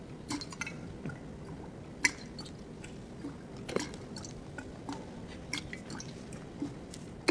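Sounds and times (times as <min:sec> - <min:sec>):
soft liquid wash: 0:00.0 - 0:07.3
water drops splashing from an automated water dripper sound installation: 0:00.2 - 0:07.3.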